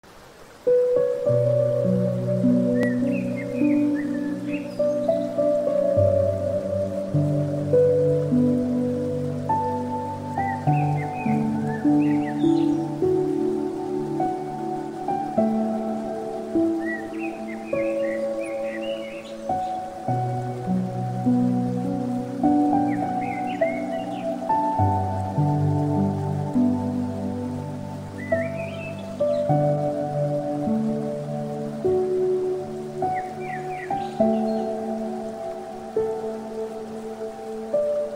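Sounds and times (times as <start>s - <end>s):
piano: 0.1s - 38.1s
bird: 2.7s - 5.6s, 10.4s - 13.0s, 16.7s - 19.9s, 22.6s - 24.8s, 28.1s - 29.8s, 33.1s - 34.8s.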